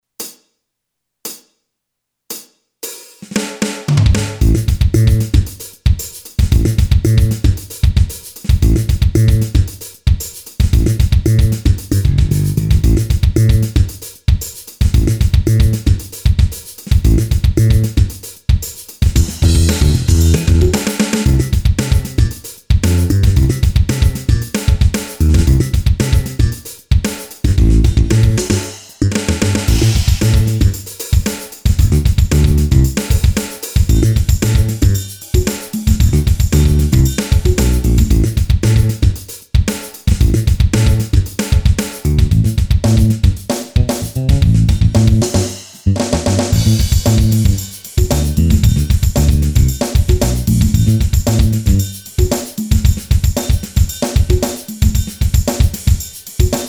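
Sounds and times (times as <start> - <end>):
Boss DR-3 drum machine funk beat: 2.3 - 56.6.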